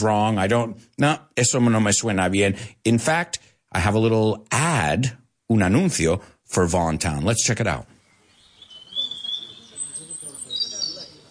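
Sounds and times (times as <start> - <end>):
speech: 0.0 - 8.0
birds chirping: 7.9 - 11.3
indistinct voices murmuring: 8.7 - 11.3.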